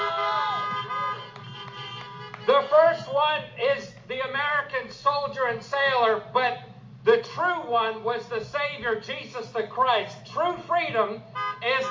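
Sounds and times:
car horns honking: 0.0s - 3.6s, 10.3s - 11.8s
speech: 4.3s - 11.8s.

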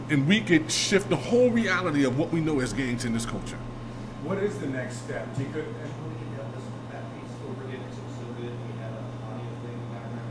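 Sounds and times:
refrigerator compressor droning with a steady low hum: 0.0s - 10.2s
speech: 0.1s - 6.1s.

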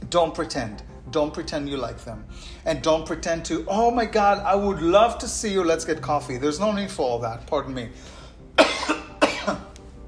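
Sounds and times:
speech: 0.1s - 8.2s, 9.5s - 9.7s
sharp coughs from something stuck in the throat: 8.6s - 9.7s.

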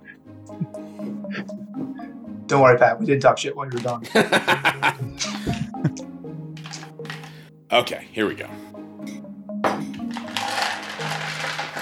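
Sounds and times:
speech: 2.5s - 6.0s, 7.7s - 8.7s
laughter: 4.0s - 6.0s
several dice tumbling and clattering across a hard surface: 10.1s - 11.8s.

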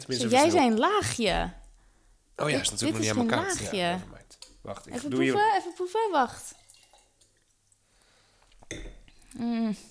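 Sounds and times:
speech: 0.0s - 1.6s, 2.4s - 6.6s, 9.4s - 9.8s
soft dripping of wine: 5.7s - 9.4s
wine trickling into a glass: 6.4s - 7.5s
brief louder splash of wine: 6.5s - 7.5s.

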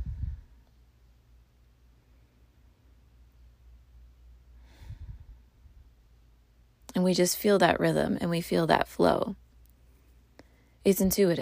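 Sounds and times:
slow deep breathing: 0.0s - 0.7s, 4.5s - 5.8s
quiet hiss: 0.0s - 11.3s
speech: 7.0s - 9.4s, 10.8s - 11.3s.

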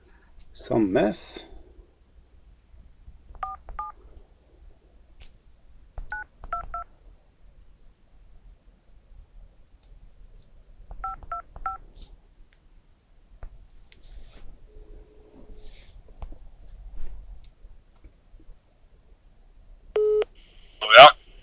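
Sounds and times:
faint low hum: 0.0s - 21.4s
speech: 0.7s - 1.5s
telephone keypad tones as a number is dialed: 3.4s - 3.9s, 11.0s - 11.8s.

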